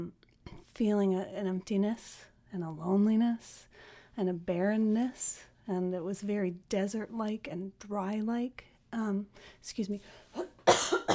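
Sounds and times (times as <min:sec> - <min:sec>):
speech: 0:00.8 - 0:10.5
person with a little cold coughing sharply and loudly: 0:10.6 - 0:11.1.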